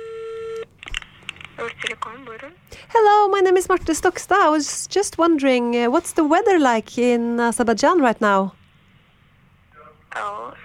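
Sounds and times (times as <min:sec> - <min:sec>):
steady telephone tone: 0:00.0 - 0:00.7
speech: 0:01.6 - 0:08.6.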